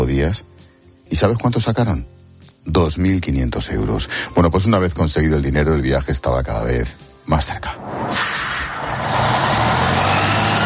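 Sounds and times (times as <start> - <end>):
speech: 0.0 - 8.5
broad road noise: 7.8 - 10.6
bus engine running: 8.6 - 10.6.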